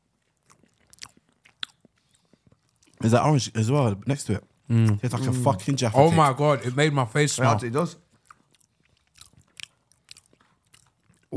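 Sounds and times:
biting and chewing warm chocolate pudding with chocolate ganache middle: 0.0 - 3.0, 8.0 - 11.3
speech: 3.0 - 8.0.

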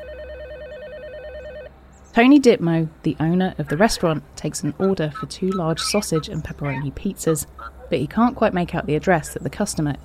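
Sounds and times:
telephone ringing with a warbling electronic trill: 0.0 - 1.7
low hum: 0.0 - 10.0
speech: 2.2 - 10.0.

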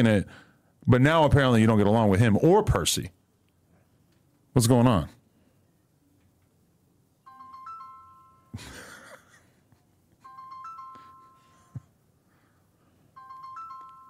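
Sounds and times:
speech: 0.0 - 3.2, 4.5 - 5.2, 8.6 - 8.8
phone ringtone bright electronic melody: 7.2 - 9.1, 10.2 - 11.9, 13.0 - 14.0.

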